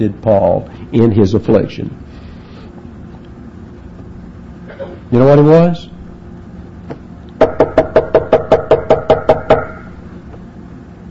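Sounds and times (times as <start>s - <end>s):
speech: 0.0s - 2.1s, 5.1s - 5.9s
knocking on a door: 7.4s - 9.8s.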